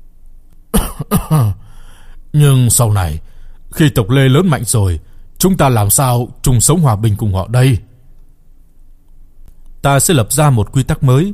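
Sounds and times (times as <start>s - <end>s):
dry coughing: 0.7s - 1.7s
throat clearing: 0.7s - 1.7s
speech: 0.9s - 1.6s, 2.3s - 7.9s, 9.8s - 11.3s.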